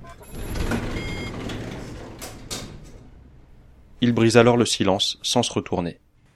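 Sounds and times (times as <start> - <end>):
steady electronic warning beeps: 0.0 - 1.5
elevator doors sliding shut with mechanical rumbling: 0.0 - 4.5
speech: 4.0 - 6.0.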